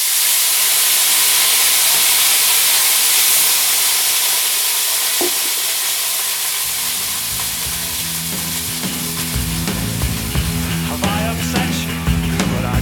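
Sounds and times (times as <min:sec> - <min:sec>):
food frying in a hot pan: 0:00.0 - 0:12.3
low clunks and stirring knocks: 0:05.2 - 0:05.9, 0:06.6 - 0:12.7.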